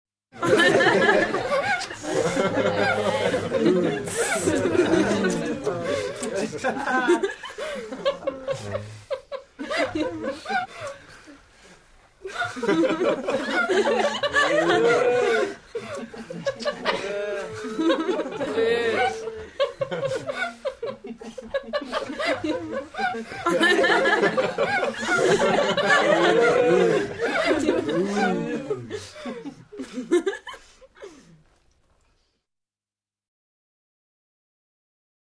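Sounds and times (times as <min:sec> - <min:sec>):
teenagers laughing: 0:00.4 - 0:11.4, 0:12.2 - 0:31.3.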